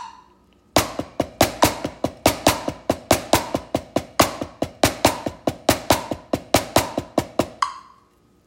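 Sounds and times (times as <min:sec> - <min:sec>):
drums played with a single hand: 0:00.8 - 0:07.7.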